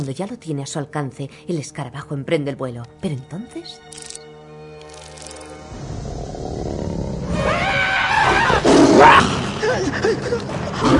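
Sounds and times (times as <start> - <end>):
speech: 0.0 - 4.2, 9.7 - 10.9
lioness growling: 5.7 - 9.7
lioness roaring as she pounces on a fleeing warthog: 5.7 - 9.7.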